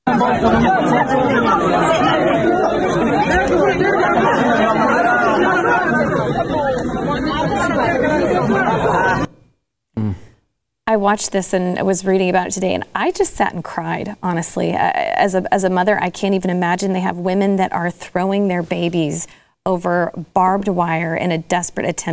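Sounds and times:
dense loud crowd murmuring and shouting at Kabul airport: 0:00.0 - 0:09.3
speech: 0:00.2 - 0:02.0, 0:11.0 - 0:22.1.

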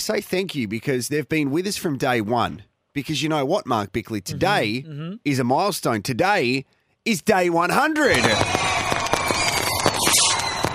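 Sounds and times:
speech: 0:00.0 - 0:08.6
fireworks crackling and popping: 0:08.1 - 0:10.7.

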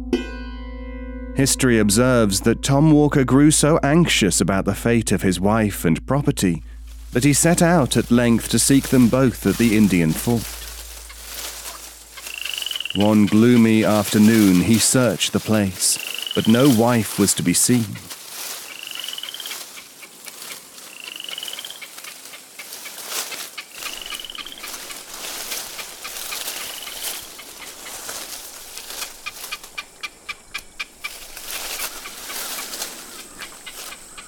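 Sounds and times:
speech: 0:01.4 - 0:10.6, 0:13.0 - 0:18.2
dense hissing outdoor background: 0:04.4 - 0:34.2
crows cawing: 0:10.4 - 0:14.6, 0:16.0 - 0:16.6, 0:18.0 - 0:34.2.

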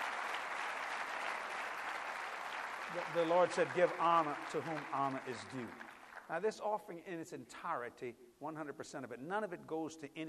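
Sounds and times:
audience clapping at a church service: 0:00.0 - 0:06.4
speech: 0:02.9 - 0:10.2.

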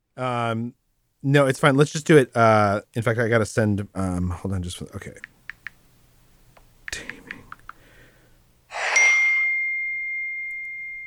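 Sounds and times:
speech: 0:00.2 - 0:05.4
bright phone notification ding: 0:08.8 - 0:11.0.

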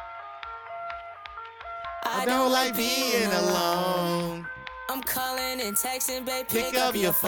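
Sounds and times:
moody electronic club track: 0:02.0 - 0:07.2
sustained melancholy synth tones: 0:02.1 - 0:04.6
speech: 0:02.1 - 0:07.2.

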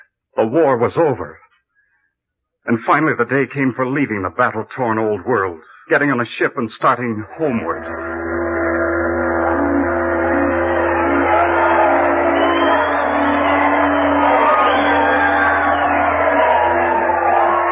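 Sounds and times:
speech: 0:00.4 - 0:01.4, 0:02.6 - 0:08.1
large crowd shouting and cheering: 0:07.6 - 0:17.7
steady low rumble: 0:07.6 - 0:17.7.

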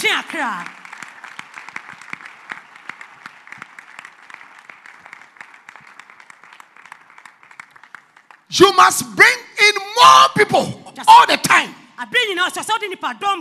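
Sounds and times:
audience applause: 0:00.0 - 0:08.5
individual sharp claps: 0:00.0 - 0:08.5
speech: 0:00.1 - 0:00.8, 0:08.5 - 0:13.3.

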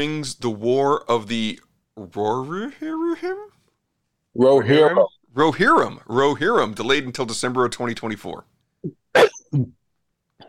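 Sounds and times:
speech: 0:00.0 - 0:03.5, 0:04.4 - 0:09.8
sneeze: 0:09.1 - 0:09.7.

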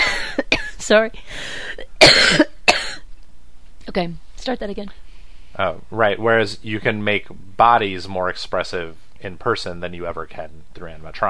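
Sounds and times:
person coughing: 0:00.0 - 0:00.8, 0:02.0 - 0:03.0
speech: 0:00.4 - 0:02.5, 0:03.9 - 0:11.2
faint breath: 0:01.2 - 0:01.8, 0:05.0 - 0:05.6.

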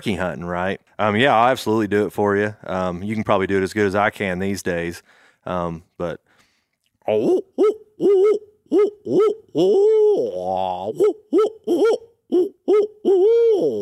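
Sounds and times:
speech: 0:00.0 - 0:06.3, 0:07.1 - 0:13.8
owl hoots imitated by a human mouth as a turkey-hunting locator call: 0:07.1 - 0:13.8.

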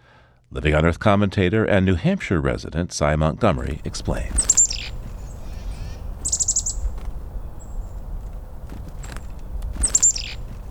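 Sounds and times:
speech: 0:00.5 - 0:04.6
low steady outdoor rumble: 0:03.5 - 0:10.6
chickadee giving its scolding winter call: 0:03.7 - 0:10.6.

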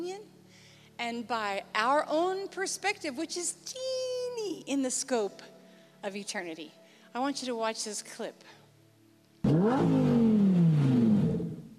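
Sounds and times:
speech: 0:00.0 - 0:00.4, 0:01.0 - 0:08.6, 0:09.4 - 0:10.1
car engine revving hard: 0:09.4 - 0:11.7.

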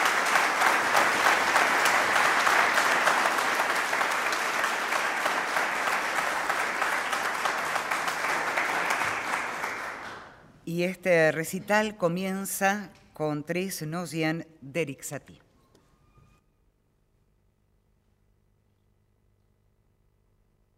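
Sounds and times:
full audience applauding: 0:00.0 - 0:10.4
speech: 0:10.8 - 0:15.4.

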